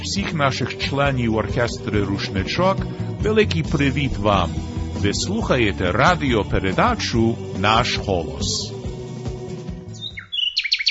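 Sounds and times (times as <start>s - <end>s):
speech: 0.0s - 8.8s
music: 0.0s - 10.4s
nightingale singing in quick high whistled chirps and trills: 9.9s - 10.9s.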